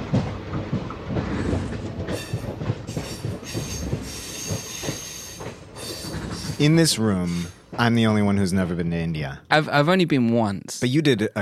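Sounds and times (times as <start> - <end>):
Indian railway passenger train rumbling along the tracks: 0.0 - 9.6
high metallic squealing of train wheels: 2.1 - 7.7
speech: 6.6 - 11.4.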